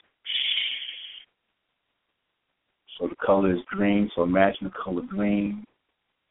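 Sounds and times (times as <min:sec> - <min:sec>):
human voice exhaling a hissing shh during a breathing exercise for the liver: 0:00.3 - 0:01.3
speech: 0:03.0 - 0:05.7.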